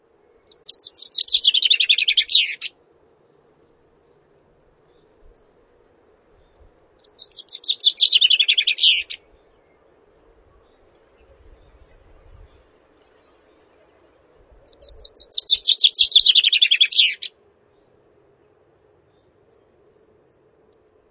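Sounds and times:
faint steady low hum: 0:00.0 - 0:16.4, 0:17.2 - 0:21.0
chaffinch singing: 0:00.5 - 0:02.7, 0:07.0 - 0:09.4, 0:14.6 - 0:17.3.

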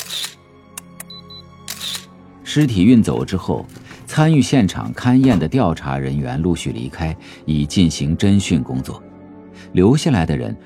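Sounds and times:
camera whirring: 0:00.0 - 0:00.4, 0:01.7 - 0:02.1
camera shutter clicks photographing a corpse at a crime scene: 0:00.0 - 0:01.1, 0:01.7 - 0:02.1
speech: 0:02.5 - 0:09.1, 0:09.7 - 0:10.6.

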